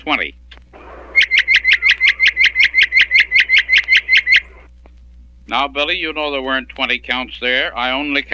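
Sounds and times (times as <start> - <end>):
speech: 0.0 - 0.5, 5.5 - 8.3
bird squawking: 0.8 - 4.7.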